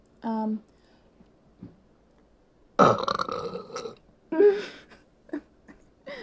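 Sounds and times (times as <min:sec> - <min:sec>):
speech: 0:00.2 - 0:00.7
loud drawn-out burp: 0:02.8 - 0:04.0
short throaty gulps and small vocal sounds: 0:02.8 - 0:04.0.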